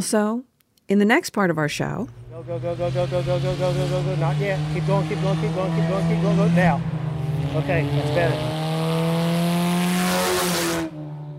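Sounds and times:
speech: 0:00.0 - 0:08.5
vintage stock car engine roaring at high revs on a track: 0:02.0 - 0:11.3
stock car engine idling hum: 0:02.1 - 0:08.9.

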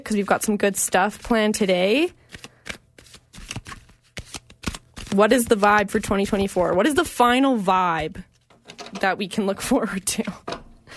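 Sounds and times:
speech: 0:00.0 - 0:02.5, 0:05.1 - 0:08.3, 0:09.0 - 0:10.4
tarot cards being shuffled by hand: 0:00.2 - 0:07.1.

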